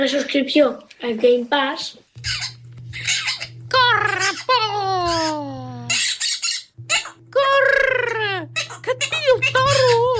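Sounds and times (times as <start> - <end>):
speech: 0.0 - 3.2
parrot squawking: 2.2 - 7.2, 8.0 - 10.1.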